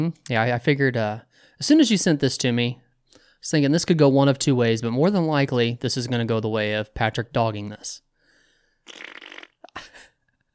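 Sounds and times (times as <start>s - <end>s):
speech: 0.0s - 2.8s, 3.4s - 8.0s, 8.8s - 9.2s
loud wet raspberry blown with the lips like a fart: 8.8s - 9.9s.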